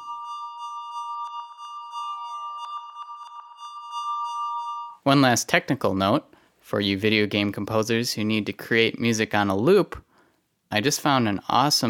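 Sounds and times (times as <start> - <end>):
808 cowbell softened with reverb and delay: 0.0 - 5.0
gliding synth tone: 0.0 - 5.0
speech: 5.0 - 10.0, 10.7 - 11.8.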